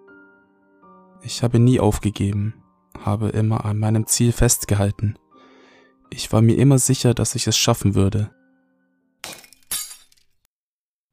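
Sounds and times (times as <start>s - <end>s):
speech: 1.2s - 5.2s, 6.1s - 8.4s
glass cracking and shattering: 9.2s - 10.4s.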